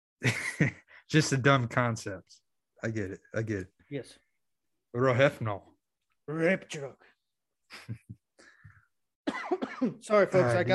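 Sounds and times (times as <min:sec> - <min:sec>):
speech: 0:00.2 - 0:04.2, 0:04.9 - 0:05.7, 0:06.3 - 0:07.1, 0:07.7 - 0:08.2, 0:09.4 - 0:10.7
person coughing into the microphone: 0:09.3 - 0:10.0.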